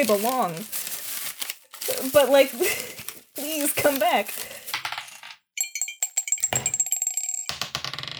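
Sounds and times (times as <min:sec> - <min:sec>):
speech: 0:00.0 - 0:00.8, 0:02.0 - 0:04.5
twelve-sided dice rolling on a hard table in a tabletop game: 0:04.7 - 0:05.4, 0:06.5 - 0:08.1.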